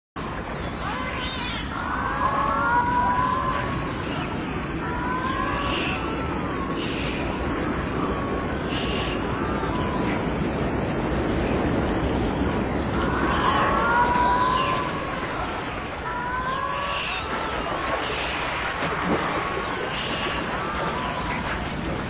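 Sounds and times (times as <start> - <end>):
dolphin in the sea off Sakhalin and the Kuril Islands: 0.2 - 22.0.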